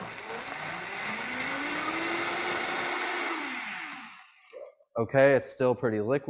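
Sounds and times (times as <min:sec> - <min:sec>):
blender mixing cheese sauce: 0:00.0 - 0:04.7
speech: 0:05.0 - 0:06.2.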